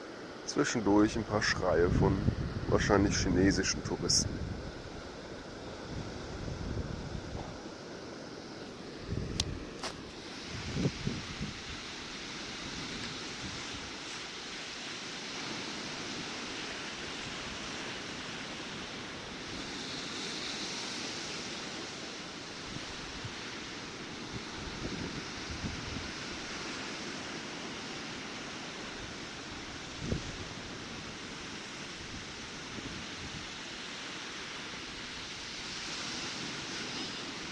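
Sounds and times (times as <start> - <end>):
ocean waves washing onto the shore: 0.0 - 37.4
speech: 0.5 - 4.5
wind buffeting the microphone: 1.0 - 7.8, 8.8 - 33.8.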